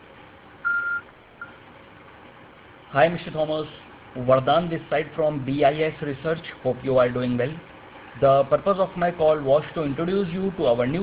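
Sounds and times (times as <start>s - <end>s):
low hiss: 0.0s - 11.0s
voicemail beep tone: 0.6s - 1.6s
speech: 2.9s - 11.0s.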